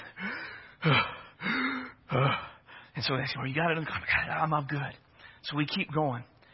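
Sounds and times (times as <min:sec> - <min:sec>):
voice imitating labored heavy breathing: 0:00.1 - 0:02.7
speech: 0:00.8 - 0:01.1, 0:03.0 - 0:06.3.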